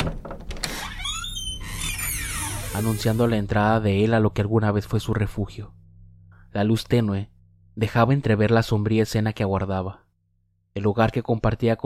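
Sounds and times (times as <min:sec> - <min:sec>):
door creaking open: 0:00.0 - 0:03.4
speech: 0:02.8 - 0:05.8, 0:06.5 - 0:10.0, 0:10.8 - 0:11.8.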